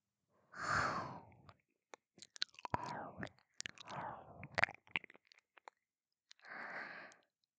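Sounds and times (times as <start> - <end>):
gentle ear-nibbling ASMR mouth sounds: 1.5 - 7.3.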